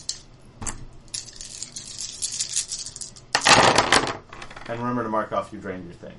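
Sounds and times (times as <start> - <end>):
handful of dice rattling across a hard surface: 2.8 - 4.8
speech: 4.7 - 6.1.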